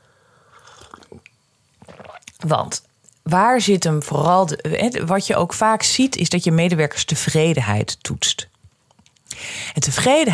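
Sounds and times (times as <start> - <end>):
person sipping tea with soft slurps: 0.1 - 2.4
small smacking mouth noises: 0.6 - 2.4
swallow: 0.6 - 2.4
speech: 2.4 - 8.5, 9.7 - 10.3.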